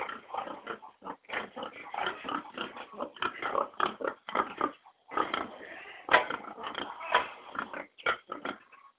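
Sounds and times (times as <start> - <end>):
pigs raised for bacon grunting and oinking in a pen: 0.0 - 8.9.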